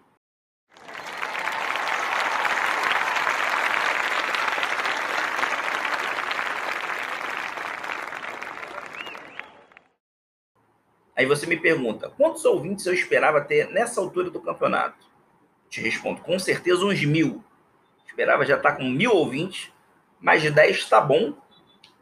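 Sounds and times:
crowd applause: 0.7s - 10.0s
faint whistle-like tone: 9.0s - 9.7s, 17.8s - 18.2s, 21.4s - 21.9s
speech: 11.2s - 15.1s, 15.7s - 17.5s, 18.2s - 21.4s.

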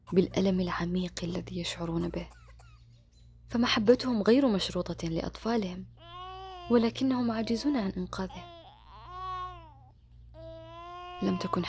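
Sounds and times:
speech: 0.1s - 2.4s, 3.5s - 8.5s, 11.2s - 11.6s
baby crying: 6.0s - 11.6s.

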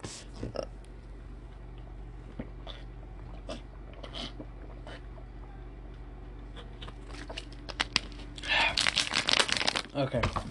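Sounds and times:
plastic water bottle crunched on a microphone: 7.1s - 10.0s
speech: 10.0s - 10.4s.

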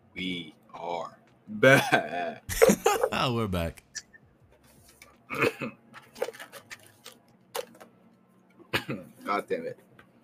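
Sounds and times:
speech: 0.2s - 4.0s, 5.3s - 5.8s, 8.9s - 9.8s
person coughing: 5.3s - 5.8s, 8.7s - 9.1s.

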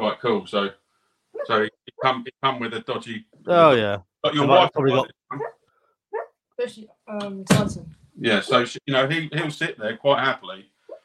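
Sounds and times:
speech: 0.2s - 0.8s, 1.4s - 5.6s, 6.6s - 10.7s
dog yelping and whimpering while dreaming: 5.3s - 6.3s.

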